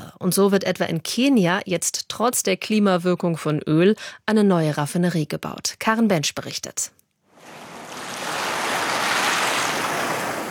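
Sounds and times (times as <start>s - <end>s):
speech: 0.2s - 7.0s
Indian Ocean surf washing against the shore of an island off the Kenyan coast: 7.4s - 10.4s.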